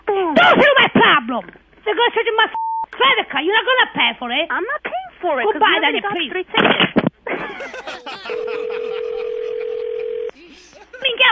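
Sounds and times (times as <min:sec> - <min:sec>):
speech: 0:00.4 - 0:09.0
laughter: 0:07.3 - 0:11.2
steady telephone dialing tone: 0:08.3 - 0:10.3.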